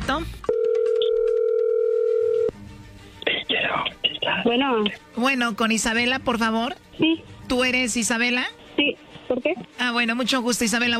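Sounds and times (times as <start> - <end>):
speech: 0.2 - 0.5, 4.4 - 10.9
telephone dial tone: 0.5 - 2.5.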